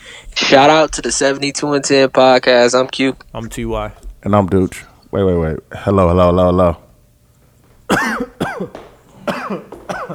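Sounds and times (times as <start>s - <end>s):
raspy wheezing: 0.0s - 0.4s
speech: 0.5s - 6.8s, 7.9s - 10.1s
harsh hacking coughs: 7.8s - 10.1s.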